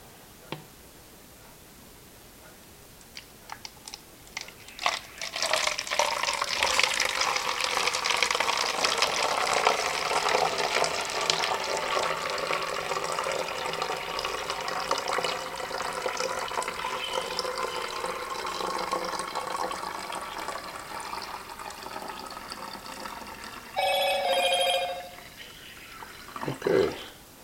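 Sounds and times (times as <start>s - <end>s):
film stop bath pouring into a bottle: 3.1s - 26.9s
phone message notification chime: 23.8s - 25.3s.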